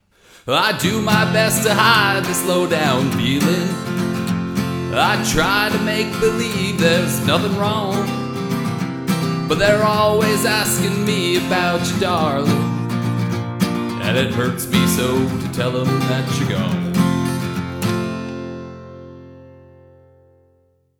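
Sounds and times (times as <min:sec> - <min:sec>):
acoustic guitar: 0:00.1 - 0:20.9
person singing into an AKG P420 microphone: 0:00.4 - 0:08.6, 0:09.2 - 0:12.9, 0:13.9 - 0:16.9.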